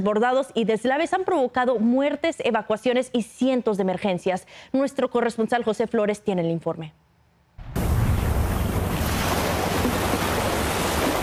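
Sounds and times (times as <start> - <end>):
speech: 0.0 - 7.0
Pacific Ocean storm waves crashing against the coast of Guatemala: 7.6 - 11.2.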